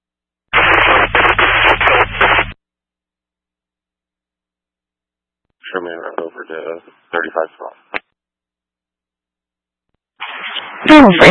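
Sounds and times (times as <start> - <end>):
crackling radio static: 0.5 - 2.6, 5.7 - 8.0, 10.2 - 11.3
speech: 5.7 - 7.9, 10.8 - 11.3.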